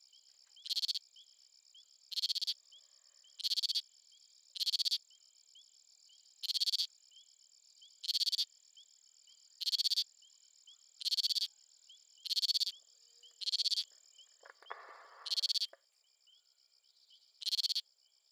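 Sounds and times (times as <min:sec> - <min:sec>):
Scinax squalirostris frog calls: 0:00.6 - 0:01.2, 0:02.1 - 0:03.9, 0:04.5 - 0:05.1, 0:06.4 - 0:06.9, 0:08.0 - 0:08.5, 0:09.6 - 0:10.1, 0:10.7 - 0:16.4, 0:17.4 - 0:17.9.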